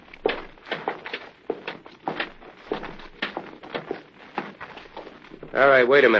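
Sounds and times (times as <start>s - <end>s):
footsteps of a blindfolded man climbing a flight of stairs: 0.0s - 6.1s
speech: 5.6s - 6.1s.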